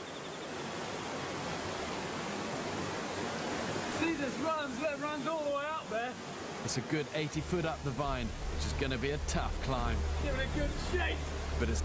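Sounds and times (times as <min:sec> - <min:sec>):
steady dense roar of rushing water: 0:00.0 - 0:11.8
speech: 0:04.0 - 0:11.8.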